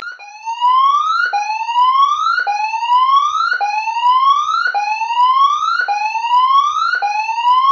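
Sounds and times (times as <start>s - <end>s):
tsunami siren standard signal with multiple rising tones: 0.0s - 7.7s.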